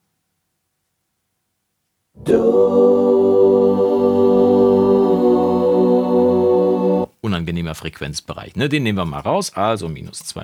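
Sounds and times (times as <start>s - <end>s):
choir holding a sustained chord: 2.2s - 7.1s
speech: 2.3s - 3.0s, 7.4s - 10.4s.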